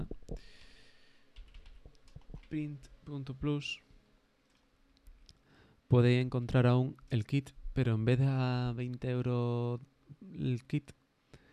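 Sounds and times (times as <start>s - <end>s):
quiet hum: 0.0s - 11.5s
typing on a computer keyboard: 1.4s - 2.6s
speech: 2.5s - 3.8s, 5.9s - 11.0s.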